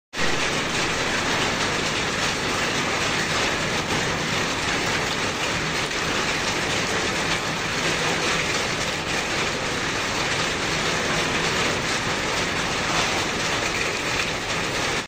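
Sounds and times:
rain on roof: 0:00.1 - 0:15.0.

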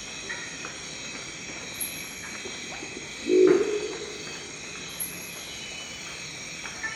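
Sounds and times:
constant background hiss: 0:00.0 - 0:06.9
Crested owl deep rough growl: 0:03.3 - 0:04.3.

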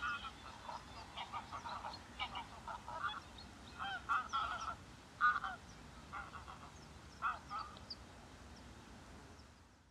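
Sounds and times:
greylag goose Anser anser honking: 0:00.0 - 0:03.2, 0:03.8 - 0:07.7
steady low background hiss: 0:00.0 - 0:09.9.

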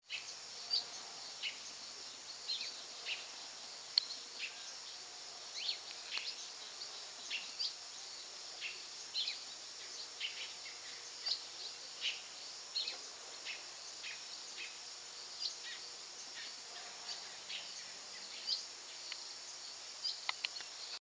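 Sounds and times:
Scarlet throated tanager: 0:00.0 - 0:21.0.

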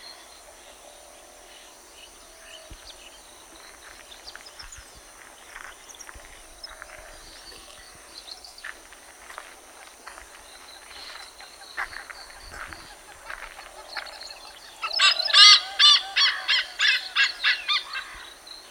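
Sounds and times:
Malabar Pied Hornbill cackling calls: 0:12.3 - 0:18.3.

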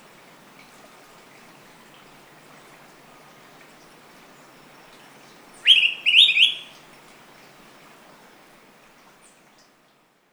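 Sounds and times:
Araripe manakin call: 0:05.7 - 0:06.7.

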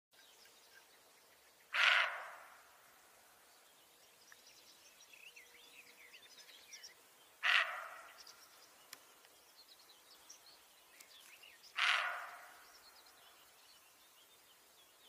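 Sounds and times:
red brocket calling: 0:01.7 - 0:02.6, 0:07.4 - 0:08.2, 0:11.8 - 0:12.6.

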